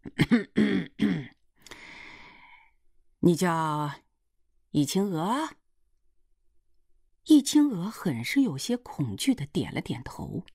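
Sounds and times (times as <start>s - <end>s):
person clearing throat with a dry cough: 0.0s - 1.4s
speech: 0.2s - 0.8s, 3.2s - 4.0s, 4.7s - 5.6s, 7.2s - 10.5s.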